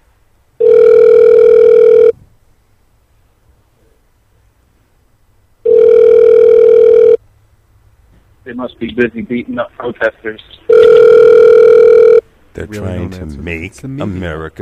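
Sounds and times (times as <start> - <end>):
telephone ringback tone on an outgoing call: 0.6 - 2.1, 5.6 - 7.2, 10.7 - 12.2
speech: 8.5 - 10.9, 12.6 - 14.6.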